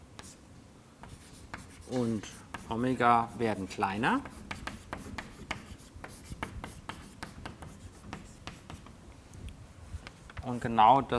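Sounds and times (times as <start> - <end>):
pen or chalk strokes of handwriting: 1.0 - 9.0
speech: 1.9 - 4.4, 10.5 - 11.1.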